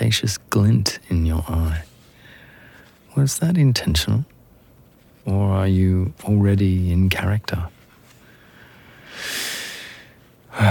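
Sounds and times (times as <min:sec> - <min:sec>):
speech: 0:00.0 - 0:01.9, 0:03.2 - 0:04.3, 0:05.2 - 0:07.8
slow deep breath: 0:02.1 - 0:03.0, 0:08.2 - 0:10.6.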